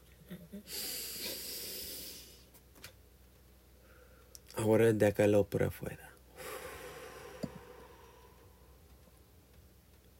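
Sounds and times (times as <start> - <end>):
single long deep inhale through the nose: 0.7 - 2.5, 6.3 - 8.8
speech: 4.6 - 6.1.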